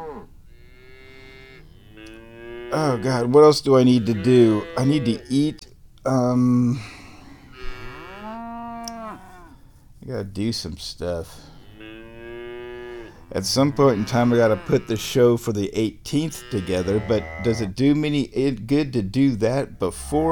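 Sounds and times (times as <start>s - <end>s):
cows mooing: 0.0s - 5.6s, 7.3s - 9.6s, 11.4s - 15.3s, 16.1s - 17.8s
speech: 2.7s - 6.9s, 10.0s - 11.5s, 13.3s - 20.3s.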